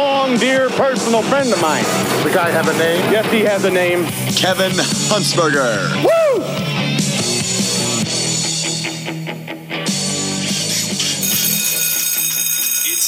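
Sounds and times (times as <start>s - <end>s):
speech: 0.0s - 6.6s
busy musical backdrop: 0.0s - 12.3s
loud continuous electric school bell ringing: 11.2s - 13.0s.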